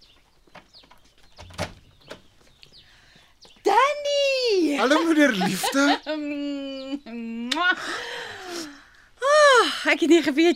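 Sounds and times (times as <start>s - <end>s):
birds chirping: 0.0s - 10.5s
door opening for a visitor: 0.5s - 2.5s
laughter: 4.7s - 6.8s
speech: 4.8s - 8.7s, 9.6s - 10.5s.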